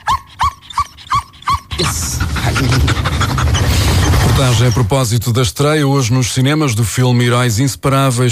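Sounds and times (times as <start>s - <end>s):
female police dog panting: 0.0s - 5.1s
speech: 1.8s - 3.3s, 4.4s - 8.3s.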